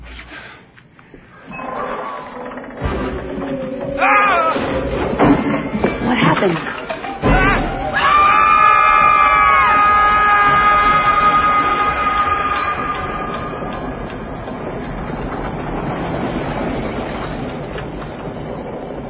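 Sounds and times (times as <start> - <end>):
train passing on rails: 3.1 - 19.0
speech: 6.4 - 6.9.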